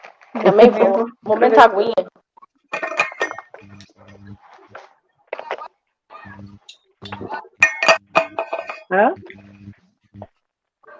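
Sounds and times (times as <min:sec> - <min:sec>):
speech: 0:00.4 - 0:02.2
glasses clinking: 0:02.7 - 0:03.6, 0:07.0 - 0:08.9.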